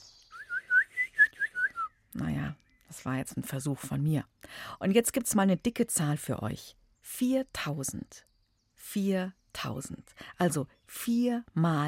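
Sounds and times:
person whistling in imitation of a songbird: 0.0s - 2.1s
speech: 2.2s - 11.8s.

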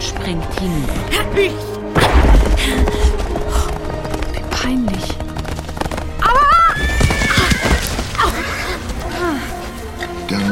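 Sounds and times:
clatter of horse hooves: 0.0s - 10.5s
horse whinnying loudly and shrilly: 6.2s - 9.2s.

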